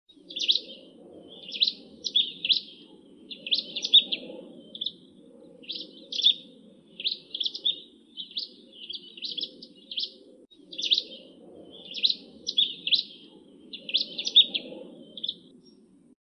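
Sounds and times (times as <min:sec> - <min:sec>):
Javan prinia singing: 0:00.1 - 0:15.9.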